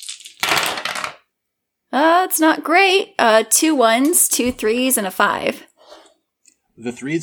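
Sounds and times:
five dice rattling and clattering across a hard surface: 0.0s - 1.2s
speech: 2.0s - 5.7s, 6.8s - 7.2s.

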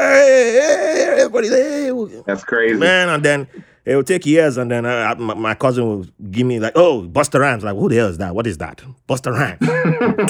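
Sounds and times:
voice mimicking a child's wailing cry: 0.0s - 2.2s
speech: 1.2s - 10.2s
laughter: 9.6s - 10.2s.

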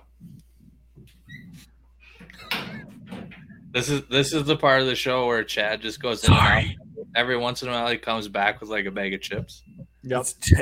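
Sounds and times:
door closing with thumping and rattling: 1.3s - 3.6s
quiet murmuring: 2.3s - 10.6s
speech: 3.7s - 10.6s.

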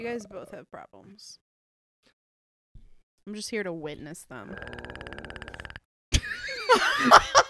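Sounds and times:
speech: 0.0s - 2.2s, 3.2s - 5.2s, 6.7s - 7.4s
throat clicks: 4.0s - 5.9s
gurgling intestinal burp: 4.5s - 5.8s
laughter: 6.2s - 7.4s.

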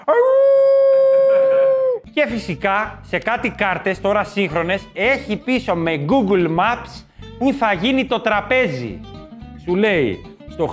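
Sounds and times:
dog howling: 0.0s - 2.0s
speech: 2.2s - 10.7s.

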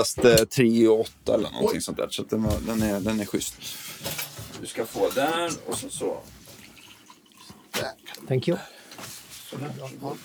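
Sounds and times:
speech: 0.0s - 6.4s, 7.8s - 8.8s, 9.5s - 10.2s
coffee pouring into a cup: 2.3s - 10.2s.

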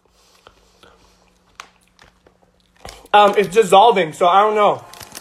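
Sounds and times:
chewing a berry: 0.3s - 3.1s
speech: 3.1s - 4.9s.

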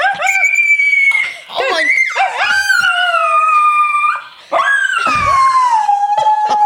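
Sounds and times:
pet dog howling high-pitched as if singing: 0.0s - 6.6s.

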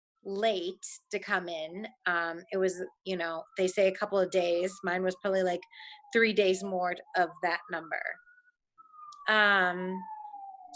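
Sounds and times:
speech: 0.2s - 8.2s, 9.3s - 10.1s
person's voice: 0.3s - 8.1s, 9.3s - 10.0s
emergency vehicle siren wailing in New York City: 1.2s - 10.7s.

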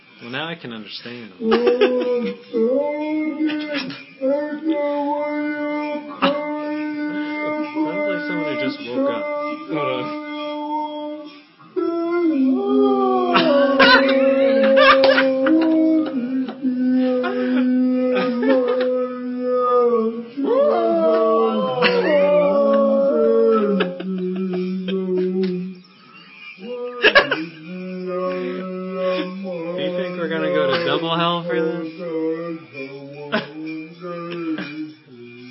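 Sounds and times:
speech: 0.2s - 6.3s, 8.3s - 10.2s
laughter: 1.4s - 2.4s, 13.2s - 19.1s, 20.4s - 25.6s, 26.6s - 27.6s
dog howls played back at half speed: 1.4s - 25.8s, 26.5s - 33.4s.

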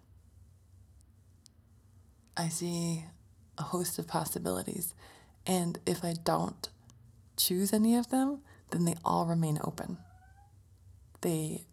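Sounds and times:
low steady hum: 0.0s - 11.7s
speech: 2.4s - 6.8s, 7.4s - 10.1s, 11.2s - 11.7s
female pet cat meowing: 10.0s - 10.5s.

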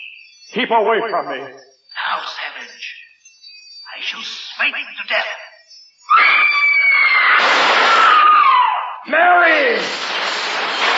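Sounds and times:
speech: 0.5s - 3.0s, 4.0s - 5.5s, 9.0s - 10.2s
loud high-pitched scream: 6.0s - 9.9s.

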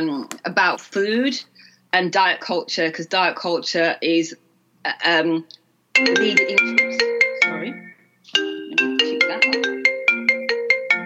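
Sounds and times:
speech: 0.0s - 8.4s
mobile phone ringtone with bright plucked-sounding melody: 6.0s - 11.0s.

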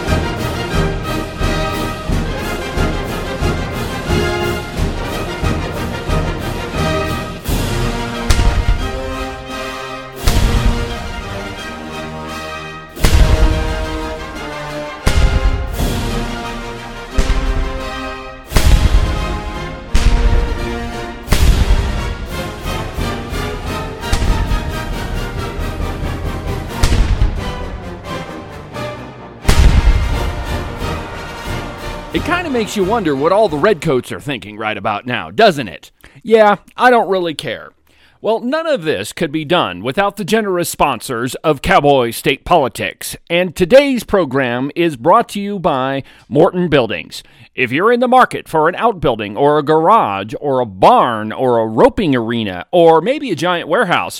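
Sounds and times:
loud orchestral music: 0.0s - 34.2s
booming cannon shots: 7.4s - 11.8s, 13.0s - 28.6s, 29.4s - 33.4s
speech: 32.5s - 54.1s.

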